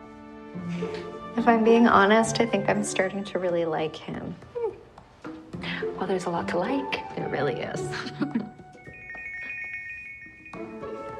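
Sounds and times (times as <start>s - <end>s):
speech: 0.6s - 4.5s, 5.7s - 8.5s
phone ringing with bright electronic ringtone: 8.6s - 11.1s.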